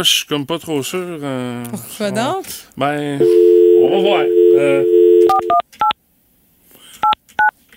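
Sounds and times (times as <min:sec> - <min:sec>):
speech: 0:00.0 - 0:05.9
telephone dial tone: 0:03.2 - 0:05.6.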